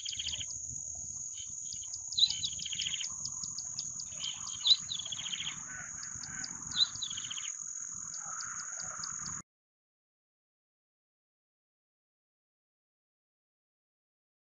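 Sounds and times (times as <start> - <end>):
bar-winged prinia singing scratchy high chirped phrases: 0.0 - 9.4.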